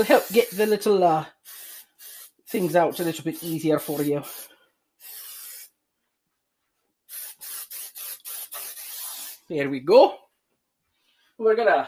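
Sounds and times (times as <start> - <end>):
speech: 0.0 - 1.4, 2.5 - 4.5, 9.5 - 10.2, 11.4 - 11.8
can of cooking spray hissing onto a baking dish: 0.0 - 5.7, 7.1 - 9.5.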